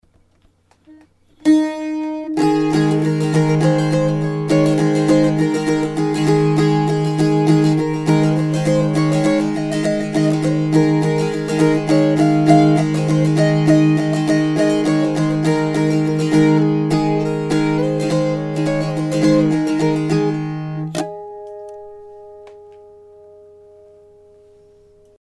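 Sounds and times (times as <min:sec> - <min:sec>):
banjola ballad: 0:01.6 - 0:24.6.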